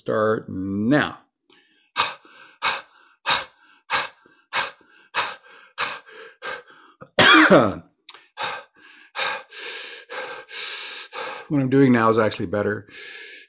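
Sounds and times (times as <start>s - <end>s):
speech: 0.0s - 1.2s, 7.5s - 7.9s, 11.5s - 13.0s
deep forceful breaths in a breathing exercise demonstration: 1.5s - 7.1s, 8.1s - 11.5s, 12.9s - 13.4s.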